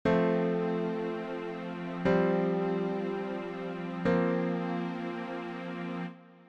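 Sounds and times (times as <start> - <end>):
F major suspended chords: 0.1 - 6.4.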